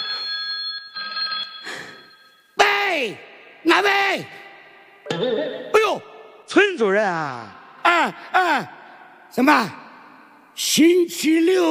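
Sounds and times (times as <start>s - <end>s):
telephone ringing: 0.0s - 2.4s
speech: 3.0s - 4.4s, 5.1s - 5.6s, 6.5s - 9.8s, 10.6s - 11.6s.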